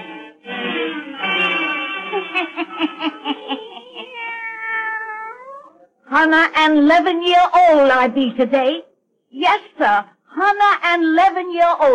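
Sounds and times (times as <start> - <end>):
laughter: 2.0 - 4.3
black cat yowling meow: 3.8 - 5.8
speech: 6.2 - 11.9.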